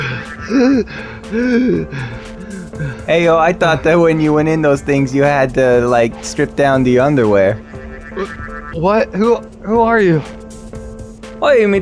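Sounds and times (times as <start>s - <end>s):
man gasping for breath after a toxic gas leak: 0.0s - 3.1s
speech: 0.5s - 10.4s, 11.4s - 11.7s.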